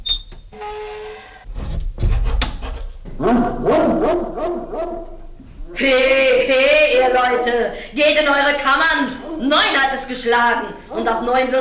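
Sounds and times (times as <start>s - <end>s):
dog barking: 3.2s - 5.2s
speech: 3.2s - 11.6s.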